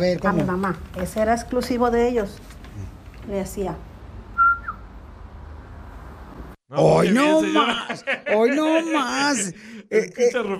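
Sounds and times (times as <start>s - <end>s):
speech: 0.0s - 3.9s, 6.7s - 10.5s
human whistle used as a family call: 4.4s - 4.8s
laughter: 7.3s - 9.7s.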